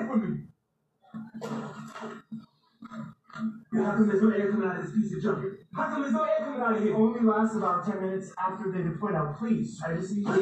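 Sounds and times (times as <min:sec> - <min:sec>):
speech: 0:00.1 - 0:00.5, 0:03.4 - 0:10.3
person coughing: 0:01.3 - 0:04.0.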